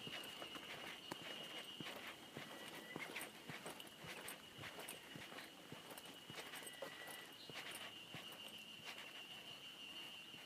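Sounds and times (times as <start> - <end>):
Ezo harusemi cicada song below Mount Tanzawa in Japan: 0.0 - 10.4.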